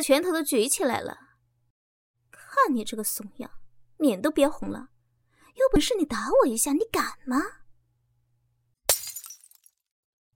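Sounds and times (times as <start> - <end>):
speech: 0.0 - 1.3, 2.6 - 4.9, 5.6 - 7.6
object smashed hard onto the floor: 8.9 - 9.8.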